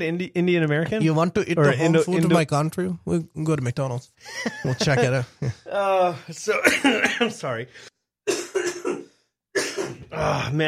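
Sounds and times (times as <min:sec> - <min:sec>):
speech: 0:00.0 - 0:07.9, 0:10.1 - 0:10.6
laughter: 0:04.2 - 0:05.8
harsh raspy coughs with throat-clearing quality: 0:06.5 - 0:07.5, 0:08.2 - 0:10.6.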